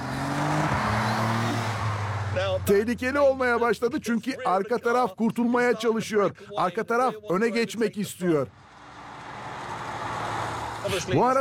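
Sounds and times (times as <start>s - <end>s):
car with twin-cam 350-horsepower turbocharged V6 engine driving on a flat straight road: 0.0s - 4.0s, 8.5s - 11.2s
speech: 2.6s - 8.6s, 10.9s - 11.3s.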